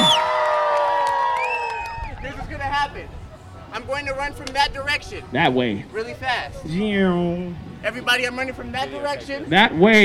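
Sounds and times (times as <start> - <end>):
audience at a juggling performance cheering: 0.0 - 2.3
high whoops: 0.0 - 2.3
speech: 3.8 - 10.0.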